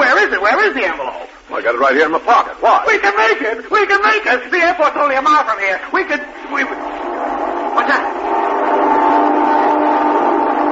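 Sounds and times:
speech: 0.4s - 8.5s
roar of the passing train: 4.7s - 10.6s
train horn blaring: 6.3s - 10.6s.

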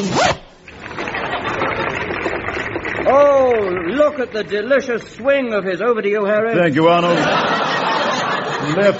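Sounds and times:
trouser zip being pulled up: 0.0s - 5.4s
laughter: 0.8s - 4.2s, 6.8s - 8.9s
speech: 3.6s - 7.6s, 8.6s - 8.9s.

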